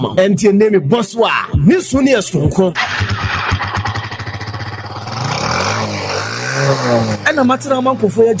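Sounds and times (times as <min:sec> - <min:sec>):
speech: 0:00.0 - 0:03.2, 0:06.6 - 0:08.3
motorcycle engine idling and revving: 0:02.8 - 0:07.8.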